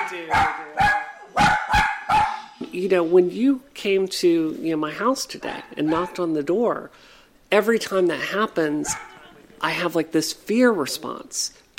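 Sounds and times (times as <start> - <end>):
dogs barking in a one-story home: 0.0 - 2.5, 5.8 - 6.3, 8.8 - 9.3
speech: 0.1 - 1.6, 2.8 - 11.7.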